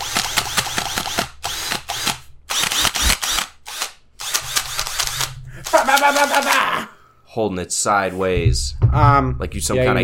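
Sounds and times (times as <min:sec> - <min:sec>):
brushed electric drill whirring: 0:00.0 - 0:05.4
laughter: 0:05.5 - 0:07.0
speech: 0:05.9 - 0:10.0.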